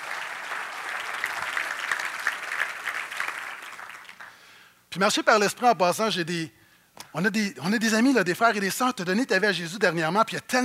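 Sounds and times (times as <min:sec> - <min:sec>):
church congregation applauding: 0:00.0 - 0:04.7
speech: 0:05.0 - 0:10.6.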